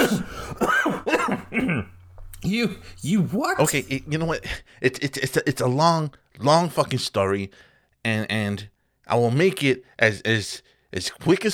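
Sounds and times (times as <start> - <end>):
man coughing while choking on his own spit: 0.0 - 2.0
speech: 1.3 - 11.5.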